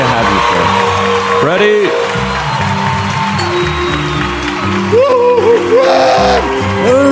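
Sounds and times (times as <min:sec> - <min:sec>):
audience applause and cheering welcoming a motivational speaker: 0:00.0 - 0:07.1.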